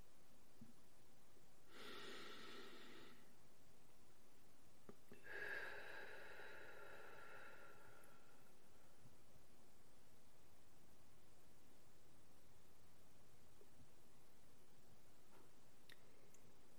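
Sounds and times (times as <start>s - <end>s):
soft inhale through the nose and exhale through the mouth during a breathing exercise: 1.6s - 3.4s, 4.9s - 9.6s, 15.2s - 16.7s.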